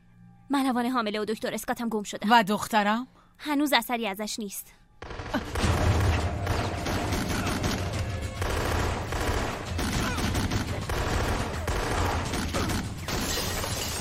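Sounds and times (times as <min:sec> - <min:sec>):
speech: 0:00.5 - 0:05.2
gunshots fired inside a building: 0:05.0 - 0:13.9.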